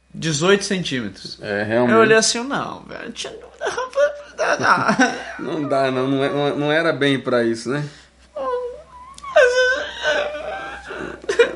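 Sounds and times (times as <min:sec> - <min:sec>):
speech: 0:00.2 - 0:08.0
person whimpering and crying in a mock-tearful voice: 0:03.2 - 0:06.8, 0:08.4 - 0:11.5
laughter: 0:03.6 - 0:06.5.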